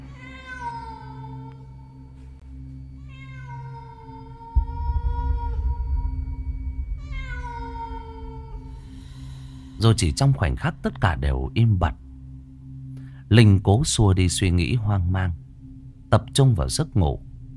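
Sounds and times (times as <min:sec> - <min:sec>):
stray cat yowling at night: 0:00.0 - 0:01.6, 0:03.0 - 0:09.0
low rumbling background: 0:01.5 - 0:17.5
speech: 0:09.8 - 0:12.0, 0:13.3 - 0:15.4, 0:16.1 - 0:17.5.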